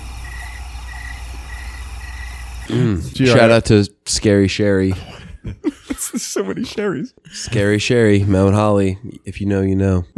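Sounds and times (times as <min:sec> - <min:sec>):
crickets chirping at night: 0:00.0 - 0:02.7
speech: 0:02.7 - 0:10.1
laughter: 0:04.9 - 0:06.8.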